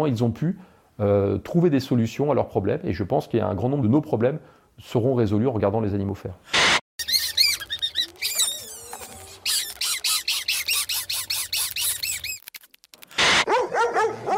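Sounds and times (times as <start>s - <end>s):
speech: 0.0s - 6.8s
running dog barking in high-pitched excited yips: 7.0s - 12.4s, 13.2s - 14.3s.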